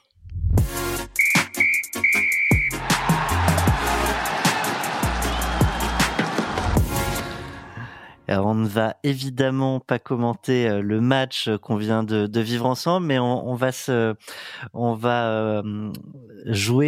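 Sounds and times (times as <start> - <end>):
referee whistle blown for end of match: 1.2 - 3.4
crowd-like noise: 2.4 - 7.2
speech: 8.3 - 16.8.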